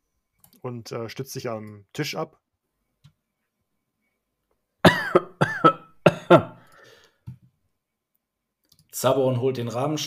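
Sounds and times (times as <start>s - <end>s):
speech: 0.6s - 2.4s, 6.3s - 6.6s, 9.0s - 10.0s
person coughing: 4.8s - 6.6s.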